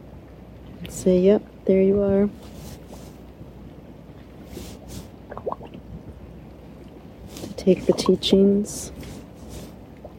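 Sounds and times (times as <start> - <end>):
speech: 0.8 - 2.5, 7.7 - 9.0
bright rising bubble pops: 5.3 - 5.8
bubbles burbling up through water: 5.3 - 6.0.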